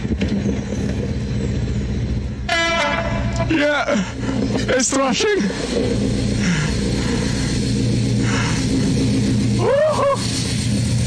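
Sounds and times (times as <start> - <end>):
Class 56 diesel locomotive passing through station: 0.0 - 11.0
Class 56 diesel locomotive two-tone horn blast: 2.5 - 3.5
speech: 3.5 - 6.2.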